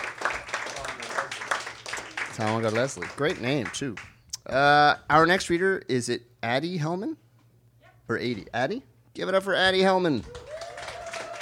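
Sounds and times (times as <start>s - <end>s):
small audience applauding in a room: 0.0s - 4.1s, 10.2s - 11.3s
speech: 2.4s - 7.2s, 8.1s - 10.4s.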